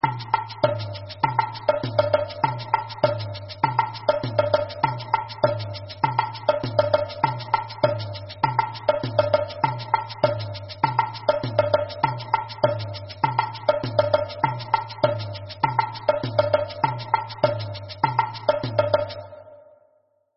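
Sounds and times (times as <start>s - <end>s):
agogo bell in samba reggae: 0.0s - 19.5s.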